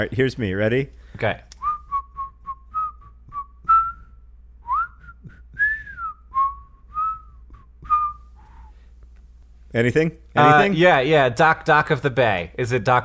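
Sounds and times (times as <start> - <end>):
speech: 0.0 - 1.5, 9.7 - 13.0
person whistling a song melody: 1.6 - 8.7.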